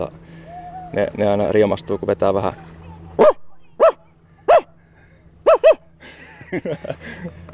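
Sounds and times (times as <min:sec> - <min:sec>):
speech: 0:00.9 - 0:03.3, 0:06.5 - 0:07.4
person imitating big and small dogs barking: 0:05.5 - 0:05.8
laughter: 0:06.0 - 0:07.5.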